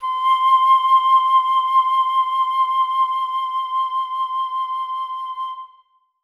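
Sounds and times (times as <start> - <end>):
flute playing C5 note: 0.0 - 6.0.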